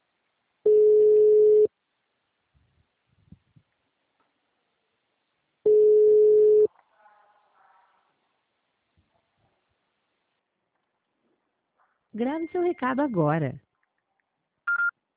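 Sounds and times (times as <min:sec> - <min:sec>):
telephone ringing tone on a call: 0:00.7 - 0:01.7, 0:05.7 - 0:06.7
speech: 0:12.2 - 0:13.6.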